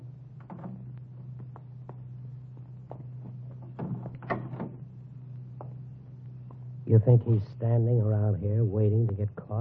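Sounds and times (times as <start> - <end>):
car door eased open and gently shut with soft clicks and a muffled thud: 3.8 - 4.9
speech: 6.9 - 9.5.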